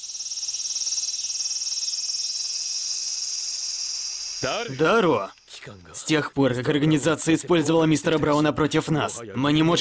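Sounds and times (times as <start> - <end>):
loud cicadas chirring: 0.0 - 5.6
speech: 4.4 - 9.7.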